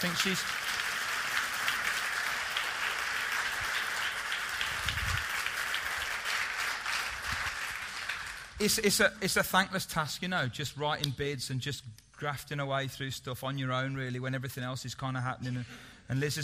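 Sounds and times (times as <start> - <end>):
speech: 0.0 - 0.8, 8.6 - 16.4
room full of people applauding: 0.0 - 8.6.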